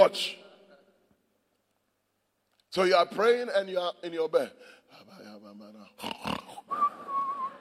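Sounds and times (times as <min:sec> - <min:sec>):
speech: 0:00.0 - 0:00.4, 0:02.7 - 0:06.9
voice imitating loud snoring: 0:05.9 - 0:06.7.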